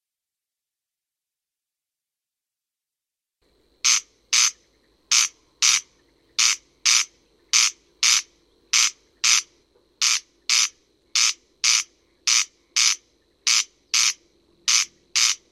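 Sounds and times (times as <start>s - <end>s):
Corn crake grating two-part call: 3.8s - 15.5s.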